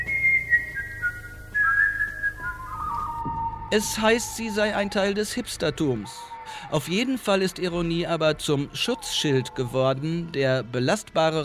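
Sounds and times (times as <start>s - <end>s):
person whistling a wavering melodic tune: 0.0s - 3.8s
speech: 3.7s - 11.4s.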